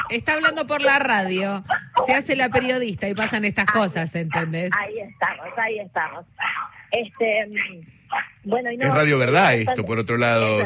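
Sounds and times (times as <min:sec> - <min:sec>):
noisy dogs barking: 0:00.0 - 0:00.2, 0:01.2 - 0:08.5
speech: 0:00.1 - 0:10.6.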